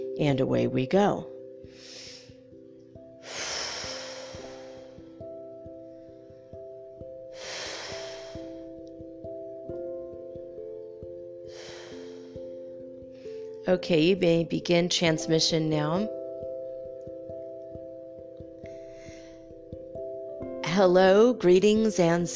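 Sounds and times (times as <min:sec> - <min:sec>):
quiet sustained musical tones: 0:00.0 - 0:22.3
speech: 0:00.2 - 0:01.9, 0:13.7 - 0:16.2, 0:20.8 - 0:22.3
person taking slow deep breaths: 0:01.7 - 0:02.5, 0:03.2 - 0:05.4, 0:07.3 - 0:08.8, 0:11.4 - 0:13.6, 0:18.6 - 0:19.8.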